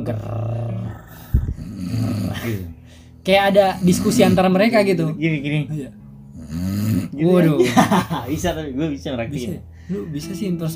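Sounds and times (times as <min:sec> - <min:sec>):
voice imitating loud snoring: 0:00.0 - 0:02.8, 0:03.6 - 0:04.4, 0:06.3 - 0:07.2
speech: 0:00.1 - 0:00.4, 0:02.4 - 0:10.7
laughter: 0:07.6 - 0:08.5.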